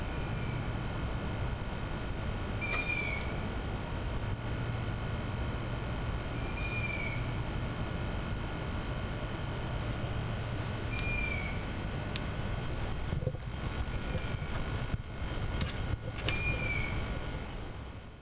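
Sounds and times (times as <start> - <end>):
constant shrill hum: 0.0 - 18.2
long-eared owl calling with brief descending squeaks: 2.6 - 3.3, 6.6 - 7.3, 10.9 - 11.7, 16.2 - 17.2.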